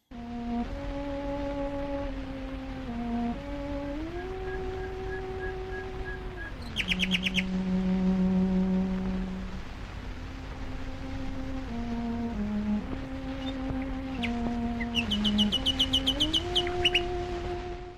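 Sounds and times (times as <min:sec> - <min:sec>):
slow sustained cello tones in a modern musical piece: 0:00.1 - 0:17.9
nightingale singing: 0:04.0 - 0:07.9, 0:13.2 - 0:17.2.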